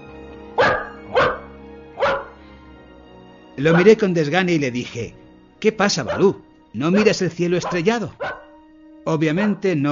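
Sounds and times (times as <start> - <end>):
dog barking impatiently: 0.6 - 2.4, 3.7 - 4.0, 6.0 - 6.4, 7.0 - 8.6, 9.4 - 9.6
speech: 3.6 - 8.2, 9.0 - 9.9.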